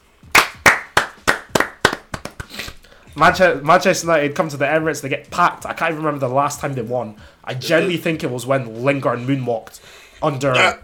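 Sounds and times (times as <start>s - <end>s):
group clapping hands in a steady rhythm: 0.3s - 2.8s
speech: 3.2s - 10.8s.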